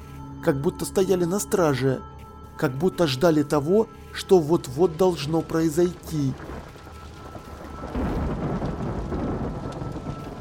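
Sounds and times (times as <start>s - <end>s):
speech: 0.4s - 6.5s
constant hiss of falling rain: 3.9s - 10.3s
low rolling thunder: 6.4s - 10.3s.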